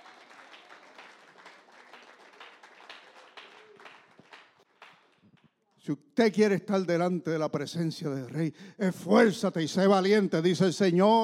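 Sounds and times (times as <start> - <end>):
audience applauding: 0.0 - 5.4
speech: 5.8 - 11.2.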